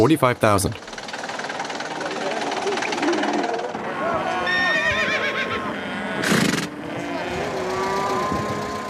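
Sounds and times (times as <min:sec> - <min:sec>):
speech: 0:00.0 - 0:00.9
other animals at an outdoor livestock market: 0:00.7 - 0:08.8
murmuring voices at an outdoor livestock market: 0:01.8 - 0:08.8
horse neighing at an outdoor livestock market: 0:03.0 - 0:08.8.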